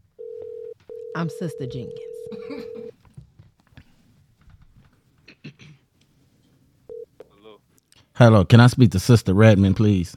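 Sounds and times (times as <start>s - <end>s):
touch-tone telephone number being dialed: 0.2s - 2.9s
speech: 1.2s - 3.0s, 8.2s - 10.1s.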